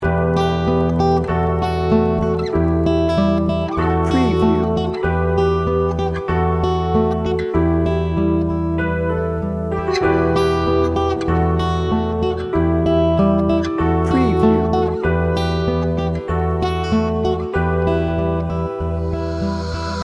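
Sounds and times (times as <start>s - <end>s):
dreamy music loop: 0.0s - 20.0s.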